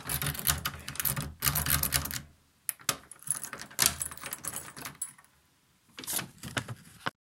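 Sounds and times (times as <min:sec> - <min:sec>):
metal keys rattling in an oiled lock: 0:00.0 - 0:05.3.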